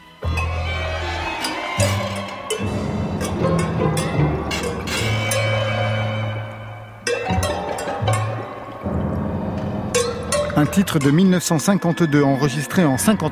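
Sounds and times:
metallic chimes in boiling water clinking: 0.2 - 9.0, 9.9 - 13.3
low sustained drones: 0.2 - 13.3
boiling water bubbling and churning: 1.4 - 11.7
speech: 10.6 - 13.3.

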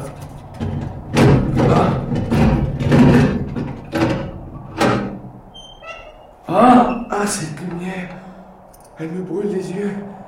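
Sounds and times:
heavy prison door being worked open with thuds and rattling knocks: 0.0 - 8.2
speech: 7.3 - 7.5, 9.0 - 10.0.

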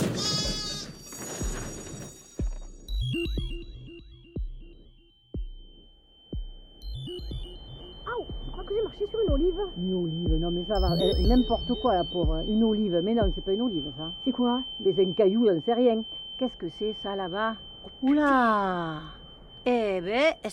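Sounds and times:
flock of sheep bleating: 0.2 - 1.0
pulsing pinging tones: 1.0 - 20.5
speech: 10.0 - 20.5.

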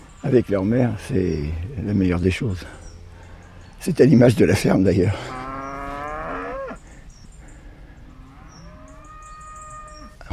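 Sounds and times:
speech: 0.2 - 2.8, 3.8 - 5.4
young heifer mooing on a free-range farm: 5.0 - 6.8, 8.1 - 10.2.

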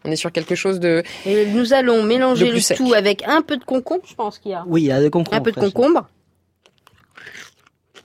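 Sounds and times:
speech: 0.1 - 6.2
chewing crackles: 6.5 - 8.0
crisp bite of crouton, radish and cucumber: 6.6 - 8.0.

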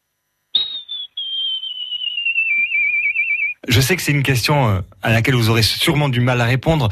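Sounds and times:
person imitating a golden eagle call with a whistled cry: 0.6 - 3.6
speech: 3.7 - 6.9.

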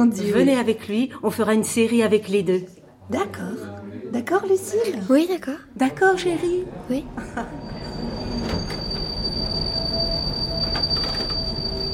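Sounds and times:
speech: 0.0 - 7.8
metro train carriage rumbling: 7.0 - 11.9
metro train wheels squealing: 7.5 - 11.9.

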